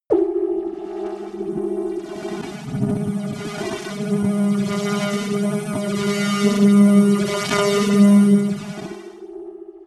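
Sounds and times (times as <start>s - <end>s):
long creepy modulator sound: 0.1s - 9.8s.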